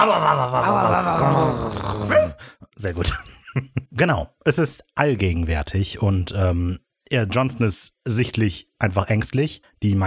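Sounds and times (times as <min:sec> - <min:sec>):
laughter: 0:00.0 - 0:01.8, 0:03.0 - 0:04.0
people imitating dogs barking and growling: 0:00.0 - 0:02.5
speech: 0:00.0 - 0:10.0.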